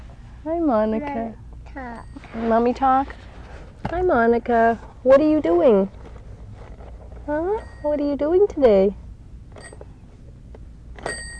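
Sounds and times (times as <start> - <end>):
low hum: 0.0 - 11.3
speech: 0.4 - 6.0, 7.3 - 9.0
toy phone bell ringing: 11.0 - 11.3.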